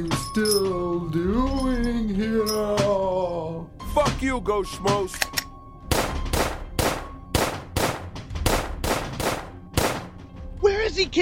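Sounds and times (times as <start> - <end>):
speech: 0.0 - 2.8, 4.2 - 5.3, 11.0 - 11.2
gunshots fired in darkness: 5.9 - 10.3.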